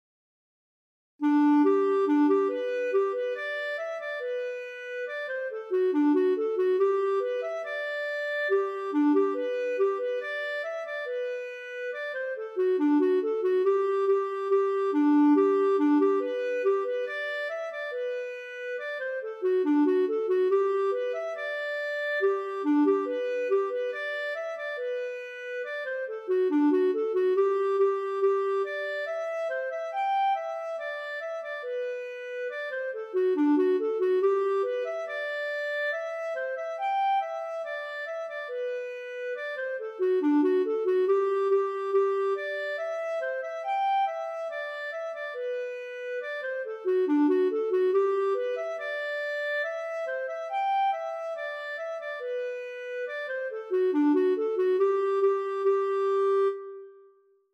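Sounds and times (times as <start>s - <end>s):
schottische folk tune: 1.2s - 57.0s.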